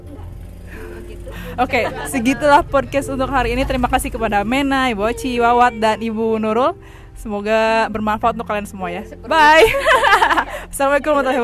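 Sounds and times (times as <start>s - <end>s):
motorcycle engine passing: 0.0s - 11.4s
laughter: 0.7s - 4.7s, 9.4s - 11.4s
speech: 1.2s - 11.4s.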